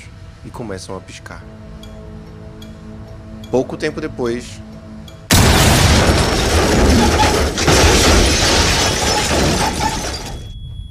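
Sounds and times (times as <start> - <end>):
speech: 0.4 - 1.9, 3.5 - 4.7
explosion blowing open the door of a base: 5.3 - 10.6.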